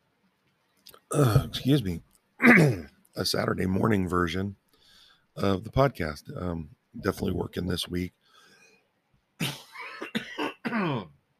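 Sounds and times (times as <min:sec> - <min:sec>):
speech: 0:01.1 - 0:04.6, 0:05.4 - 0:08.2
person coughing harshly: 0:01.2 - 0:01.6, 0:02.4 - 0:02.9, 0:09.4 - 0:11.1.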